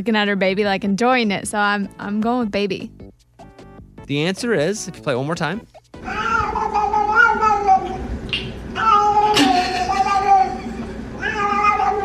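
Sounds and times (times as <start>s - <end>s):
speech: 0.0s - 3.0s, 4.1s - 6.2s
cat meowing while getting scratched on back: 6.0s - 12.0s.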